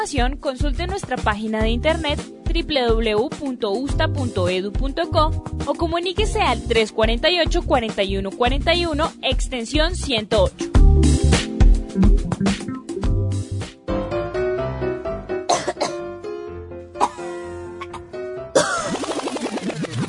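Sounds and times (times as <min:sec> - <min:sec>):
speech: 0:00.0 - 0:11.2
music with a sustained tonal bed: 0:00.0 - 0:20.0
loud harsh coughs: 0:15.5 - 0:16.0, 0:17.0 - 0:19.0.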